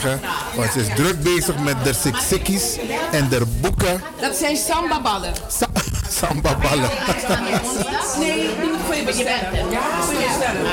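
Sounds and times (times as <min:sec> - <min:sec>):
crowd chatter at afternoon community gathering in Amsterdam Zuidoost: 0:00.0 - 0:10.7
speech: 0:00.0 - 0:10.7
laughter: 0:05.5 - 0:08.7.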